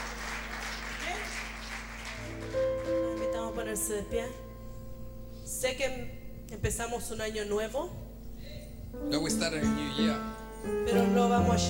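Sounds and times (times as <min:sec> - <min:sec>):
crowd applauding: 0:00.0 - 0:03.9
constant low hum: 0:02.2 - 0:11.6
speech: 0:03.7 - 0:04.5, 0:05.6 - 0:08.0, 0:08.9 - 0:11.6.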